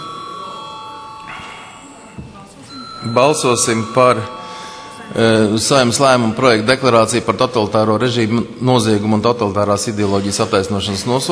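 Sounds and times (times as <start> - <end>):
parliament chamber bell ringing: 0.0 - 6.9
faint murmur in a parliament chamber: 0.0 - 11.3
speech: 3.0 - 4.4, 5.1 - 11.3.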